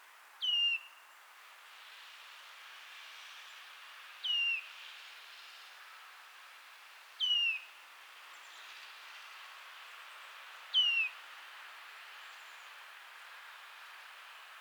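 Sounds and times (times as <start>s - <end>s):
Eurasian nuthatch Sitta europaea giving downslurred whistled calls: 0.4s - 0.9s, 7.2s - 7.7s, 10.8s - 11.2s.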